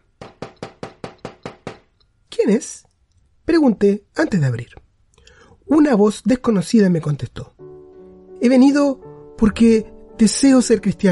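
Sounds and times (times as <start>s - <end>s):
knocking on a door: 0.2s - 1.9s
speech: 2.4s - 2.9s, 3.5s - 4.8s, 5.7s - 7.6s, 8.4s - 11.1s.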